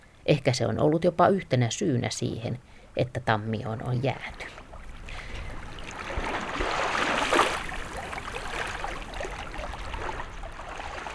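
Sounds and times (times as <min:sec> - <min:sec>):
speech: 0:00.3 - 0:04.6
calm sea water lapping on a rocky shore on a warm August day: 0:04.5 - 0:11.1.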